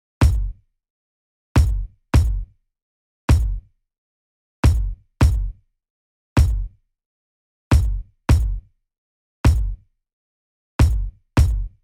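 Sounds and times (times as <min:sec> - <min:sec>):
kick drum: 0:00.0 - 0:00.6, 0:01.6 - 0:02.5, 0:03.3 - 0:03.6, 0:04.6 - 0:05.6, 0:06.4 - 0:06.8, 0:07.7 - 0:08.7, 0:09.5 - 0:09.8, 0:10.8 - 0:11.8.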